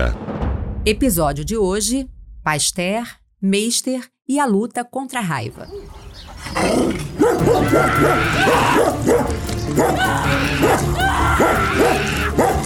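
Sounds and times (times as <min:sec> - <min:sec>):
speech: 0:00.0 - 0:12.6
dog barking furiously while charging toward a boy: 0:06.7 - 0:12.6.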